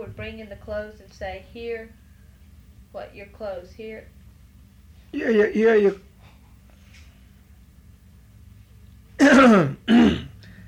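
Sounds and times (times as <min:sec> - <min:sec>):
speech: 0:00.2 - 0:02.0, 0:02.9 - 0:04.2, 0:05.1 - 0:06.1
person clearing throat: 0:09.2 - 0:10.4.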